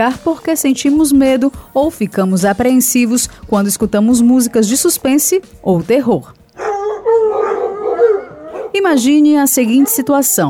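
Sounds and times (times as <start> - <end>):
speech: 0.0 - 6.4, 8.8 - 10.4
dogs howling in chorus: 6.6 - 10.4.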